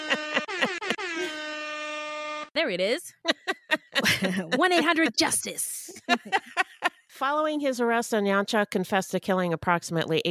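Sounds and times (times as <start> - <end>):
laughter: 0.0 - 1.4, 3.1 - 6.9
hip-hop air horn sound effect: 0.0 - 2.6
speech: 2.6 - 6.5, 7.2 - 10.2.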